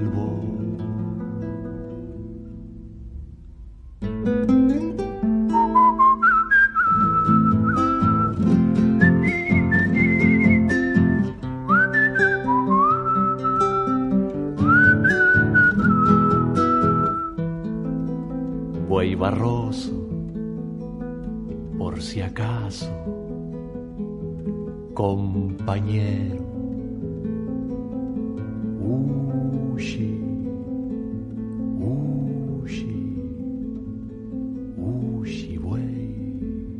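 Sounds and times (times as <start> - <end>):
instrumental music: 0.0 - 36.7
person whistling a melody: 5.5 - 14.0, 14.6 - 17.4.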